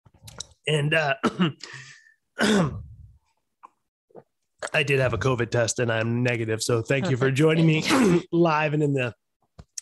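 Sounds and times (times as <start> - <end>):
speech: 0.7 - 2.9, 4.6 - 9.2
person coughing with a throat-clearing rasp: 1.2 - 1.8, 2.4 - 3.0, 7.6 - 8.3.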